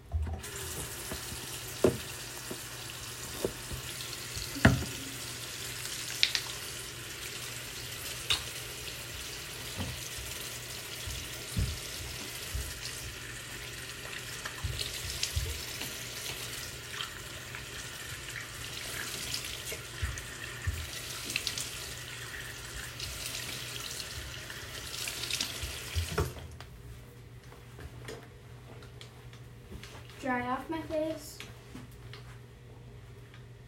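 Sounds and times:
tap water running into a sink: 0:00.3 - 0:26.4
speech: 0:30.3 - 0:31.3.

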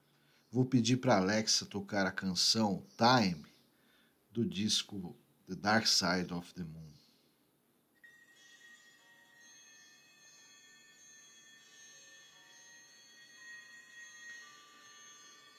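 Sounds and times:
speech: 0:00.5 - 0:03.5, 0:04.4 - 0:07.0
several alarm clocks ringing with metallic bells: 0:08.0 - 0:15.5.

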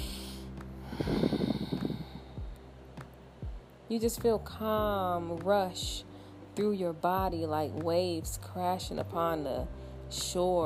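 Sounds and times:
deep nasal breath: 0:00.0 - 0:02.4
speech: 0:03.9 - 0:10.6.

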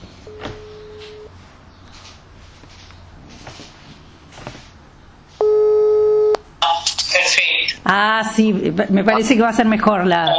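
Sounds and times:
loud steady electronic telephone tone: 0:00.3 - 0:01.3, 0:05.4 - 0:06.4
faint beep: 0:05.4 - 0:06.4
speech: 0:07.9 - 0:10.3.

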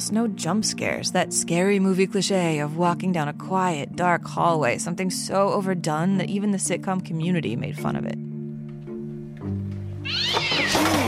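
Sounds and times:
speech: 0:00.1 - 0:08.3
cat meowing loudly and insistently: 0:10.0 - 0:11.0.

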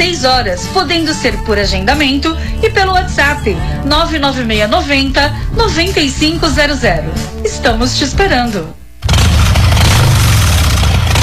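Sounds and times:
speech: 0:00.2 - 0:08.8
motorcycle engine starting and idling: 0:09.0 - 0:11.2.

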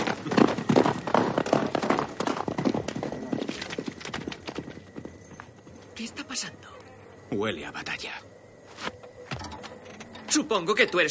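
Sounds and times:
horse hooves clip-clopping on a road as a rider passes: 0:00.0 - 0:06.2
speech: 0:07.3 - 0:08.2, 0:10.4 - 0:11.1.

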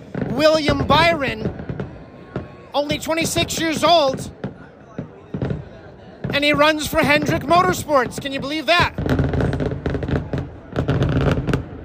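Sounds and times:
fireworks booming and crackling: 0:00.0 - 0:11.8
low murmur: 0:00.0 - 0:11.8
speech: 0:00.4 - 0:01.6, 0:02.8 - 0:04.4, 0:06.3 - 0:09.1.

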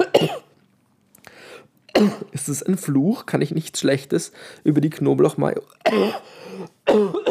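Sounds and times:
person coughing fit: 0:00.0 - 0:00.5, 0:01.9 - 0:02.4, 0:05.8 - 0:07.3
speech: 0:02.0 - 0:07.2.

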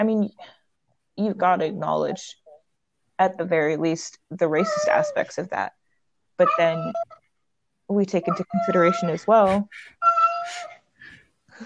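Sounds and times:
speech: 0:00.0 - 0:00.6, 0:01.2 - 0:02.4, 0:03.2 - 0:05.8, 0:06.4 - 0:07.2, 0:07.9 - 0:10.7
cat meowing: 0:09.5 - 0:10.7.

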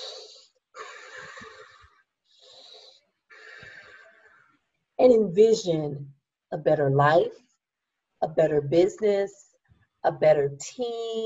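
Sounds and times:
deep slow breathing during a guided eyes-closed exercise: 0:00.2 - 0:04.5
speech: 0:05.0 - 0:07.4, 0:08.2 - 0:09.4, 0:10.0 - 0:11.2.

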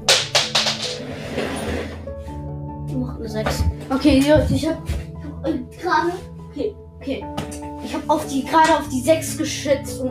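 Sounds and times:
faint steady tonal background: 0:00.0 - 0:10.1
die rolling and clattering: 0:00.3 - 0:01.8
speech: 0:03.2 - 0:10.1.

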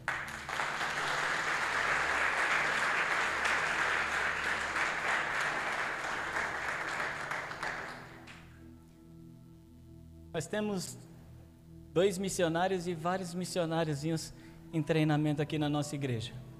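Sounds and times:
large crowd applauding: 0:00.0 - 0:08.5
speech: 0:10.4 - 0:11.0, 0:12.0 - 0:16.5.

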